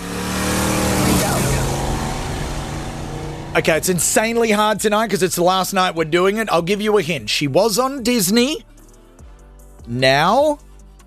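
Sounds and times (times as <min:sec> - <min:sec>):
car engine roaring as the car whizzes past: 0:00.0 - 0:04.7
speech: 0:03.6 - 0:08.7, 0:09.9 - 0:10.6.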